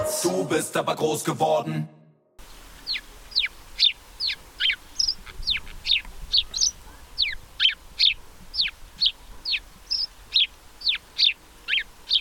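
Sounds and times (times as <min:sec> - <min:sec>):
speech: 0:00.2 - 0:02.0
house sparrow scolding chatter from bushes by a canal in Berlin: 0:02.4 - 0:12.1.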